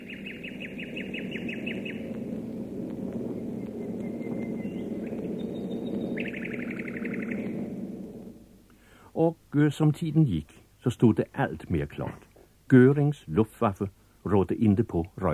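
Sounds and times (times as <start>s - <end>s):
small bird chirping in trills: 0.0s - 7.7s
steady low rumble: 0.0s - 15.3s
speech: 9.2s - 15.3s.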